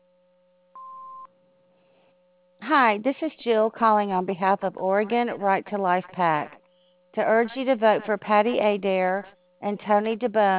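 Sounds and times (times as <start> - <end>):
faint hum: 0.0 - 10.5
answering machine beep: 0.8 - 1.3
speech: 2.7 - 6.6, 7.2 - 10.5.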